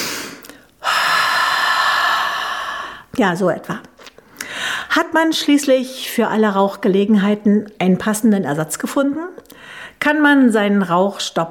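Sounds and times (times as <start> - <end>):
person exhaling a long steady rush of air: 0.0 - 3.1
person taking a deep breath in: 0.0 - 3.1, 4.4 - 4.9, 9.5 - 10.0
speech: 3.2 - 3.8, 5.0 - 9.4, 10.0 - 11.4.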